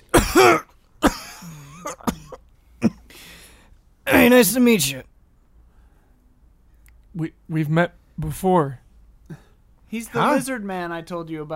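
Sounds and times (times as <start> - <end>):
man coughing: 0.1 - 3.1
speech: 4.2 - 5.1, 7.2 - 8.8, 9.9 - 11.5.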